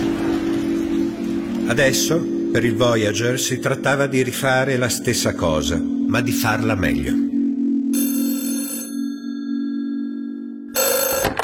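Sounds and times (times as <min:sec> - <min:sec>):
steady low hum: 0:00.0 - 0:11.2
speech: 0:01.7 - 0:07.3
electronic telephone ringtone for an incoming call: 0:07.4 - 0:11.4.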